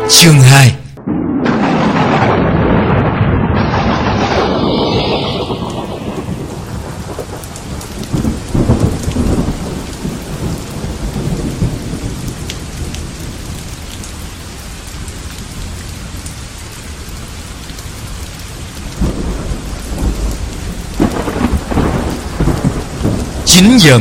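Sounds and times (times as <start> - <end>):
evening rain falling: 0.1 - 23.9
speech: 0.2 - 0.8
rolling thunder: 1.0 - 13.6, 18.8 - 23.5.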